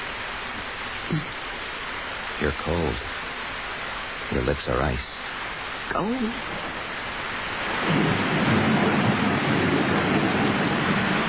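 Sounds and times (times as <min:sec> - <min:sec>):
heavy rain pouring: 0:00.0 - 0:11.2
speech: 0:01.1 - 0:01.4, 0:02.4 - 0:03.2, 0:04.3 - 0:05.1, 0:05.9 - 0:06.8
low rumbling undertone: 0:06.2 - 0:11.2.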